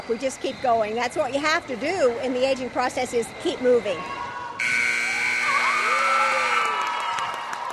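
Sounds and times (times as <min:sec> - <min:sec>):
speech: 0:00.1 - 0:04.2
basketball game-ending buzzer blaring: 0:04.6 - 0:06.8
excited crowd cheering and whooping in a gym: 0:05.1 - 0:07.7.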